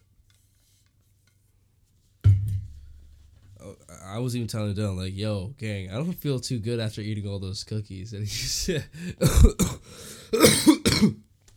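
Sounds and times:
speech: 0:04.1 - 0:11.2
harsh throaty coughing: 0:09.0 - 0:11.2.

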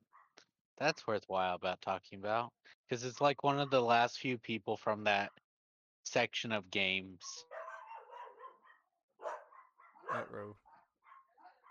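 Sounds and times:
speech: 0:00.8 - 0:05.4, 0:06.0 - 0:07.5, 0:10.1 - 0:10.6
dog barking and yipping: 0:07.2 - 0:11.6.

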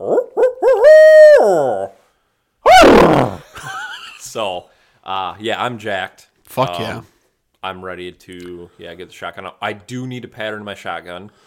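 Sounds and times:
person imitating owl hoots with their voice: 0:00.0 - 0:02.0, 0:02.7 - 0:03.4
speech: 0:04.4 - 0:11.4.

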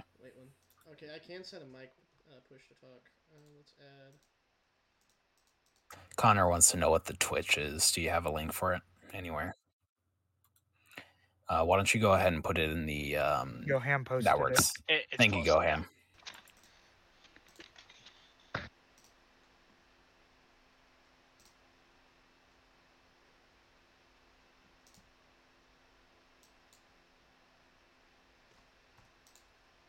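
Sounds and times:
speech: 0:00.9 - 0:04.3, 0:05.9 - 0:09.6, 0:11.5 - 0:16.0
computer mouse clicks: 0:16.2 - 0:19.2, 0:21.4 - 0:21.6, 0:24.8 - 0:25.1, 0:28.5 - 0:29.5.

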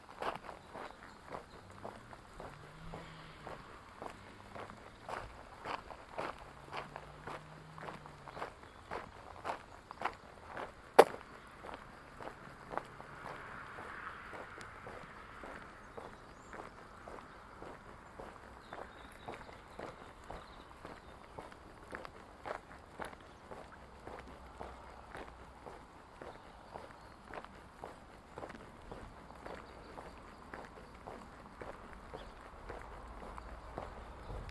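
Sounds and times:
faint wash of wind: 0:00.0 - 0:34.4
low traffic hum: 0:00.0 - 0:34.4
walking sticks striking the pavement: 0:00.0 - 0:34.4.

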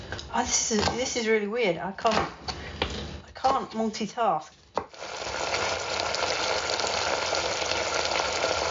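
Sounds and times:
speech: 0:00.4 - 0:02.5, 0:03.4 - 0:04.6
risotto sizzling in a pan partway through cooking: 0:04.8 - 0:08.6.

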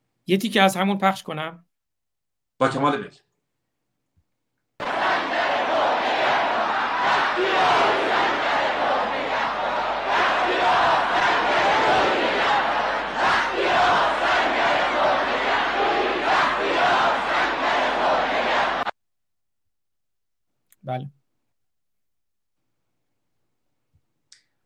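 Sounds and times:
speech: 0:00.3 - 0:01.7, 0:02.6 - 0:03.3, 0:20.8 - 0:21.2
large crowd chanting political slogans in unison: 0:04.8 - 0:18.9
people shouting: 0:04.8 - 0:18.9.

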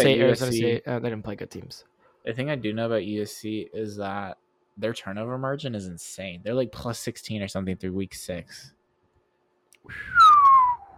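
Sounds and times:
speech: 0:00.0 - 0:08.8, 0:09.8 - 0:10.3
person whistling into a microphone: 0:09.9 - 0:10.9.

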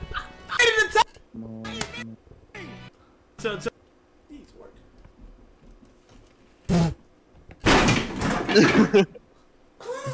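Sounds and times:
speech: 0:03.4 - 0:03.7, 0:08.6 - 0:09.2
locked house door rattling and banging against its frame: 0:07.6 - 0:08.9.

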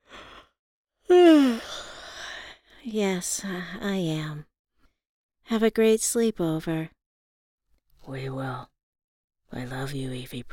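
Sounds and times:
person yawning tiredly: 0:01.1 - 0:01.7
speech: 0:02.8 - 0:04.5, 0:05.5 - 0:07.0, 0:08.0 - 0:08.7, 0:09.5 - 0:10.5.

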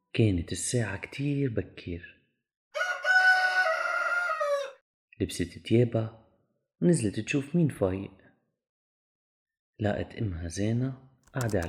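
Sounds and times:
speech: 0:00.2 - 0:02.2, 0:05.2 - 0:06.2, 0:06.8 - 0:08.2, 0:09.8 - 0:11.6
rooster crowing: 0:02.8 - 0:04.8.

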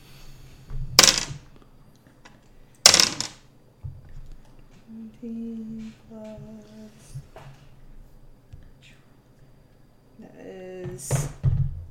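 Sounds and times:
dice rolled for initiative rattling on a table: 0:01.0 - 0:01.4, 0:02.8 - 0:03.4
speech: 0:05.1 - 0:07.6.

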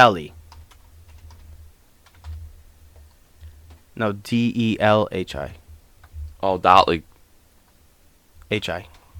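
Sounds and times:
speech: 0:00.0 - 0:00.4, 0:04.0 - 0:05.6, 0:06.4 - 0:07.1, 0:08.5 - 0:09.0
low steady hum: 0:00.0 - 0:09.1
typing on a computer keyboard: 0:00.5 - 0:02.4.

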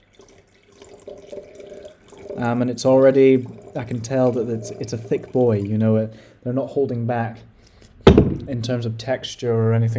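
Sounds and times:
red wine poured into a glass: 0:00.0 - 0:06.1
speech: 0:02.4 - 0:07.5, 0:08.5 - 0:09.9.

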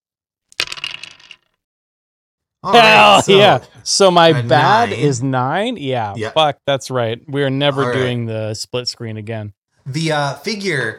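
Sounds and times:
dice rolling on a hard table for a persuasion roll in a game: 0:00.5 - 0:01.6
speech: 0:02.6 - 0:10.9.

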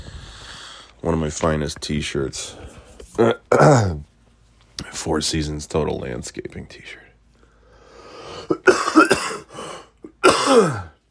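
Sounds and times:
speech: 0:01.0 - 0:04.1, 0:05.0 - 0:07.0, 0:10.5 - 0:10.9
harsh phlegmy painful coughing: 0:08.4 - 0:11.0.

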